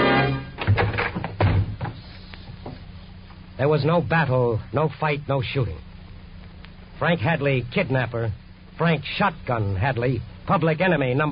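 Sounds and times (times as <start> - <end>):
heavy dull thuds as agents rush a bedroom door: 0.6 - 2.0
speech: 3.6 - 5.9, 7.0 - 11.3.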